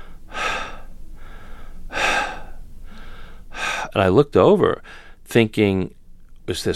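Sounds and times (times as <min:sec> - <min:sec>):
heavy labored asthmatic gasping breathing: 0:00.0 - 0:04.0
speech: 0:03.9 - 0:06.7.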